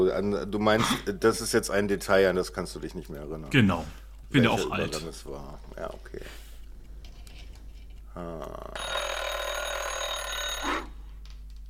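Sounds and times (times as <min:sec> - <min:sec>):
speech: 0:00.1 - 0:06.4, 0:08.2 - 0:09.1
bright continuous alarm clock bell ringing: 0:08.8 - 0:10.9.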